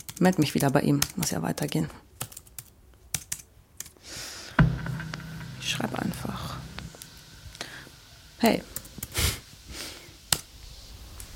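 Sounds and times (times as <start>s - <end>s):
typing on a computer keyboard to log into a chat: 0.0s - 4.0s
speech: 0.2s - 2.2s, 5.8s - 6.5s, 8.4s - 8.7s
steady hum: 4.0s - 11.3s.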